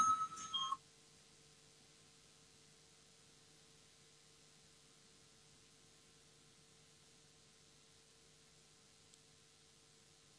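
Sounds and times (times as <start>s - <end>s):
electronic voting bell in a parliament chamber calling a vote on an amendment proposal: 0.0s - 0.8s.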